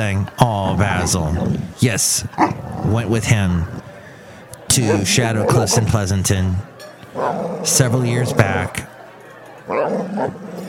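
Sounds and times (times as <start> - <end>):
speech: 0.0 - 3.8, 4.7 - 8.9, 9.7 - 10.4
dog barking: 4.8 - 6.0.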